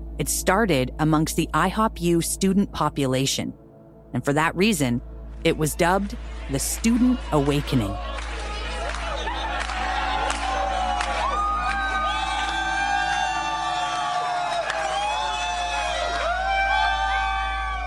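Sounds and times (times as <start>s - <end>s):
constant low hum: 0.0s - 16.5s
speech: 0.2s - 8.2s
large crowd screaming and whooping at a revival prayer and worship meeting: 6.2s - 17.8s.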